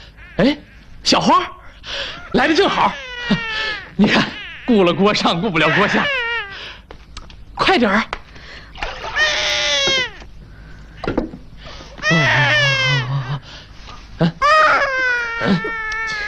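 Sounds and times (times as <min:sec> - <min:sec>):
speech: 0:00.4 - 0:03.4, 0:04.0 - 0:06.2, 0:07.7 - 0:08.1
hungry baby crying: 0:01.6 - 0:06.8, 0:09.0 - 0:10.3, 0:12.0 - 0:13.4, 0:14.4 - 0:16.2.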